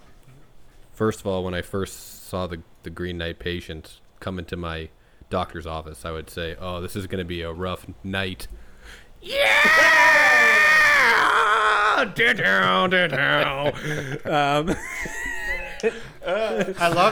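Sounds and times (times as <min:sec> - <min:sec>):
speech: 0:01.0 - 0:11.2, 0:12.0 - 0:15.2, 0:15.8 - 0:17.1
man imitating an intro scream: 0:09.2 - 0:12.6
laughter: 0:11.4 - 0:17.1.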